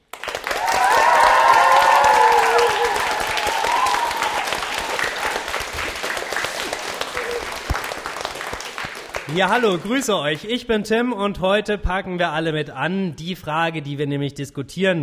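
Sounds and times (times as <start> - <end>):
school class clapping: 0.0 - 10.6
school class cheering with whoops and shouts: 0.4 - 7.8
speech: 9.4 - 15.0.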